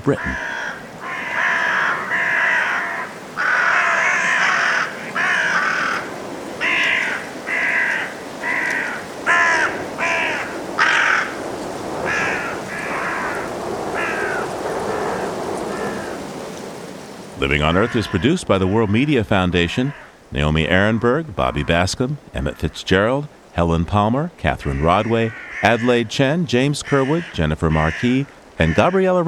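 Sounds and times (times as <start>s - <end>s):
speech: 0.0s - 0.5s, 17.4s - 29.2s
faint hiss: 0.0s - 29.2s
carrion crows cawing going to roost at dusk in Woodchester Park, Gloucestershire, England: 0.1s - 16.7s, 17.6s - 19.0s, 19.8s - 20.2s, 24.6s - 26.0s, 26.8s - 29.0s.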